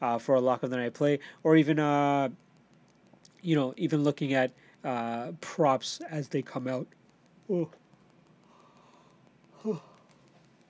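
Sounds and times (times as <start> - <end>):
speech: 0.0 - 2.5, 3.4 - 7.8, 9.6 - 9.9
person yawning: 9.6 - 10.0.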